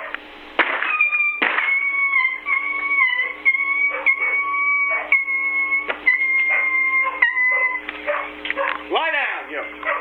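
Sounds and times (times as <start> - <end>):
dog barking: 0.0 - 0.2, 2.2 - 5.3, 6.4 - 8.9, 9.8 - 9.9
dog whining: 0.8 - 8.8, 9.8 - 9.9.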